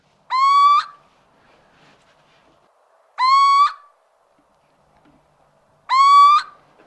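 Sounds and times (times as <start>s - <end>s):
little owl hooting: 0.3s - 1.0s, 3.2s - 3.9s, 5.9s - 6.6s.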